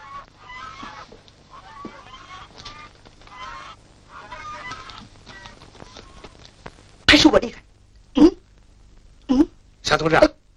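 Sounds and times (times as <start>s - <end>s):
temple geese honking: 0.0s - 6.4s
speech: 7.2s - 7.6s, 10.0s - 10.3s.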